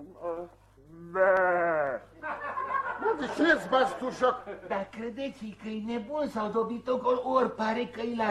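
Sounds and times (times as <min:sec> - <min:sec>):
person imitating a sheep bleat: 0:00.0 - 0:02.1
laughter: 0:02.2 - 0:05.0
speech: 0:03.2 - 0:08.2.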